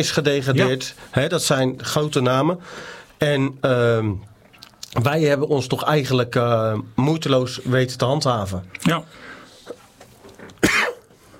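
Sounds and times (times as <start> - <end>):
speech: 0.0 - 4.3, 4.9 - 9.3
person coughing: 10.6 - 11.1.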